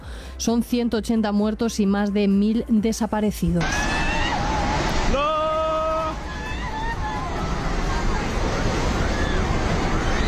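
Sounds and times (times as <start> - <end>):
speech: 0.4 - 3.8
agitated voices shouting: 3.6 - 10.2
loud continuous roar of rushing floodwater: 3.6 - 10.2.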